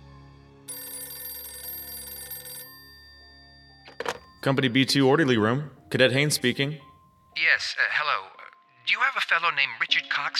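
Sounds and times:
telephone bell ringing with a shrill metallic jangle: 0.7 - 4.4
speech: 4.4 - 8.3, 9.3 - 10.3.

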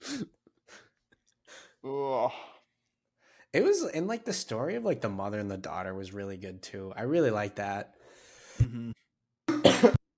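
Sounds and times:
speech: 1.8 - 2.5, 3.5 - 8.0, 8.6 - 9.0
person coughing into a microphone: 9.5 - 10.0.

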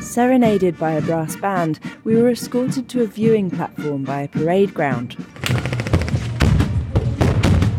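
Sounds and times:
speech: 0.2 - 5.3
live-ammunition gunfire in simulated attacks at a camp: 5.4 - 7.7.

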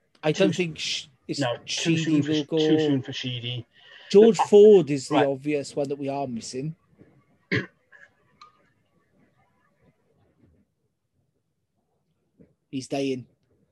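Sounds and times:
speech: 0.2 - 6.8, 7.5 - 7.8, 12.7 - 13.3
person coughing: 7.5 - 7.8.

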